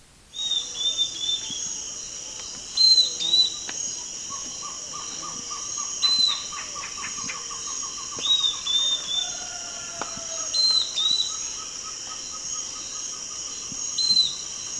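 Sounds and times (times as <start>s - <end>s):
bird calls: 0.4s - 14.7s
shrill insect drone: 0.4s - 14.7s.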